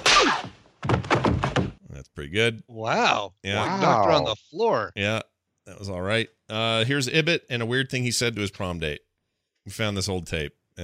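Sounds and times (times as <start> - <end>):
hard slap: 0.0 - 1.8
heavy smacking hits: 0.0 - 1.8
speech: 2.2 - 10.8.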